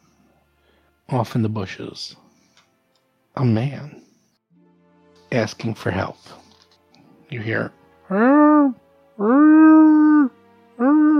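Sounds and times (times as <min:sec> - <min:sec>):
speech: 0:01.1 - 0:02.2, 0:03.4 - 0:04.0, 0:05.3 - 0:06.4, 0:07.3 - 0:09.6
mournful wails attributed to a wombat: 0:08.0 - 0:11.1.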